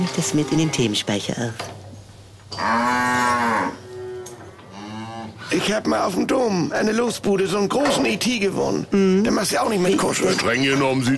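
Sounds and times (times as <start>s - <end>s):
speech: 0.0s - 1.8s, 5.6s - 11.1s
faint rural hum: 0.0s - 11.1s
cow mooing: 2.5s - 5.5s.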